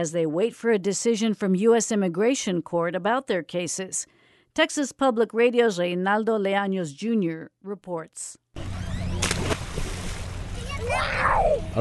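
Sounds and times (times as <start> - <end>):
speech: 0.0 - 8.4, 10.9 - 11.7
children splashing and leaping into murky river water from a makeshift dock: 9.2 - 11.2.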